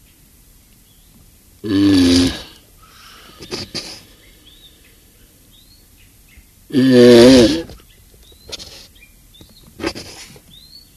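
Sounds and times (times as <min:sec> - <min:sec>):
quiet background noise: 0:00.0 - 0:10.9
Galapagos tortoise rasping groan: 0:01.6 - 0:04.4, 0:06.7 - 0:07.8.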